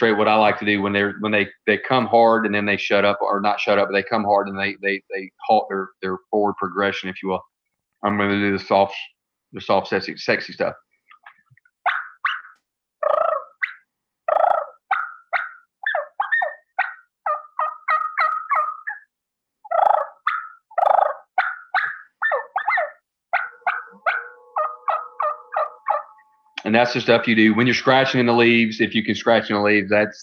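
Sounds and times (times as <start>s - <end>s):
speech: 0.0s - 10.9s, 26.7s - 30.2s
soft turkey clucks and purrs made on a mouth call: 11.1s - 28.4s.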